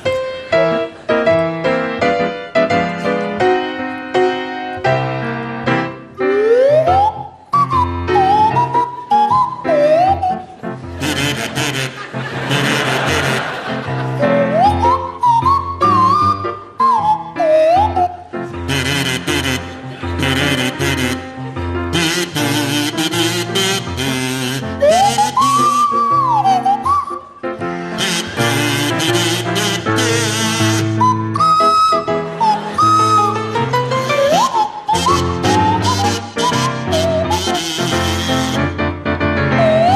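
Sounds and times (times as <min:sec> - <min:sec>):
audience noise: 0:00.0 - 0:39.9
buzzy kazoo playing a bouncy melody: 0:06.1 - 0:13.5, 0:14.2 - 0:39.9
swanee whistle sliding up and down in pitch: 0:06.2 - 0:10.6, 0:14.2 - 0:18.2, 0:24.8 - 0:27.4, 0:30.0 - 0:38.6, 0:39.5 - 0:39.9
laughter: 0:11.0 - 0:14.7.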